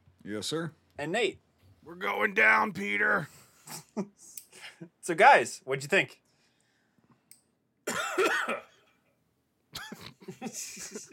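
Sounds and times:
speech: 0:00.2 - 0:06.2, 0:07.9 - 0:08.7
harsh raspy hacking coughing fit: 0:07.8 - 0:09.0, 0:09.8 - 0:10.6
laughter: 0:09.8 - 0:11.1.

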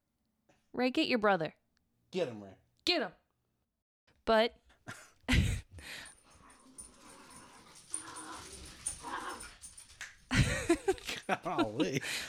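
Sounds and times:
speech: 0:00.8 - 0:03.2, 0:04.3 - 0:06.1, 0:10.7 - 0:12.2
dogs scuffling playfully: 0:06.2 - 0:11.5
dogs yipping and growling: 0:06.3 - 0:10.0
laughter: 0:10.3 - 0:12.2.

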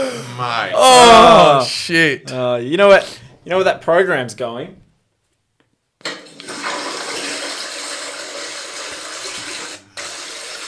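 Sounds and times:
speech: 0:00.4 - 0:04.8
toilet flushing: 0:06.0 - 0:10.6.

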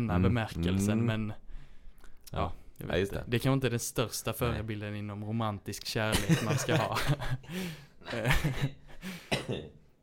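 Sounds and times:
speech: 0:00.0 - 0:01.4, 0:02.3 - 0:08.8
laughter: 0:06.1 - 0:07.5
person clearing throat: 0:09.3 - 0:09.9
person coughing in sharp raspy bursts: 0:09.3 - 0:09.9.

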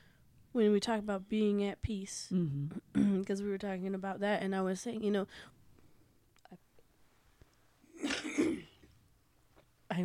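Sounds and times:
quiet breaths: 0:00.0 - 0:00.5, 0:05.2 - 0:07.9
speech: 0:00.6 - 0:05.6
wet productive cough: 0:08.0 - 0:08.8.

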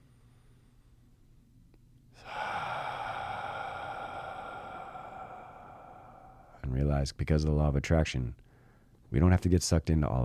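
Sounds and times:
deep breath: 0:02.2 - 0:06.9, 0:08.4 - 0:09.0
speech: 0:07.0 - 0:08.4, 0:09.1 - 0:10.2.

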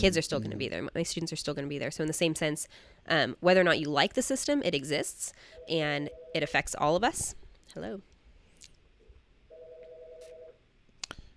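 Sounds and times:
speech: 0:00.0 - 0:08.1
faint noise: 0:00.0 - 0:11.3
phone ringing with an electronic ring tone: 0:09.5 - 0:10.6.

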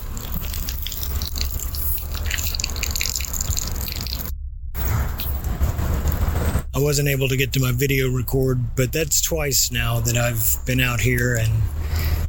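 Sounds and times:
watery liquid dripping onto pavement: 0:00.0 - 0:04.3
low rumble: 0:00.0 - 0:12.2
speech: 0:06.8 - 0:12.0.

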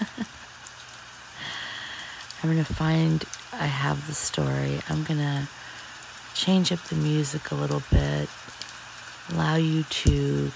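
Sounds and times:
rain falling: 0:00.0 - 0:10.5
speech: 0:02.4 - 0:05.7, 0:06.4 - 0:08.6, 0:09.3 - 0:10.5.

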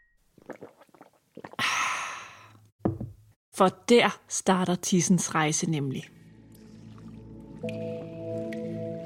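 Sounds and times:
person slurping and gulping water: 0:00.4 - 0:02.6, 0:06.4 - 0:07.9
speech: 0:03.6 - 0:06.2
soft music: 0:06.3 - 0:09.0.

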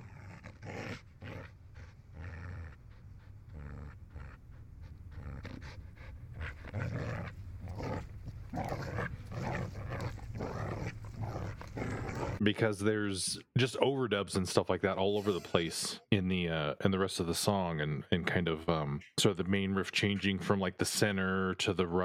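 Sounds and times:
dog panting heavily: 0:00.0 - 0:12.4
speech: 0:12.4 - 0:22.0.

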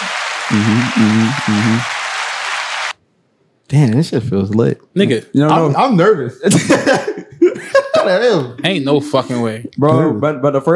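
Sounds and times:
laughter: 0:00.0 - 0:01.9, 0:06.5 - 0:09.3
canned applause sound effect from soundboard button: 0:00.0 - 0:03.0
speech: 0:00.5 - 0:01.9, 0:03.7 - 0:10.7.

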